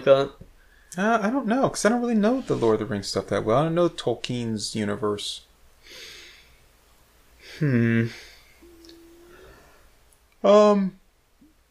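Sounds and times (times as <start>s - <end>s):
speech: 0.0s - 6.1s, 7.6s - 8.3s, 10.4s - 11.0s
person breathing quietly: 5.8s - 6.6s, 7.4s - 10.0s
person yawning loudly with voiced groans: 7.5s - 9.8s.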